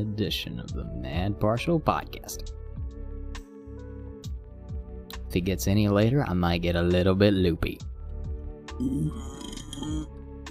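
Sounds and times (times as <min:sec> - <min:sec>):
speech: 0:00.0 - 0:02.6, 0:05.3 - 0:07.9, 0:08.8 - 0:10.2
low drawn-out burp turned away from the microphone: 0:08.8 - 0:10.1.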